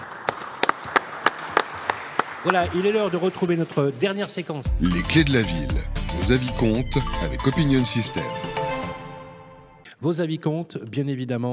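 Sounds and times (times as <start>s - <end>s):
scattered audience applause: 0.0s - 3.8s
speech: 2.4s - 8.6s, 10.0s - 11.5s.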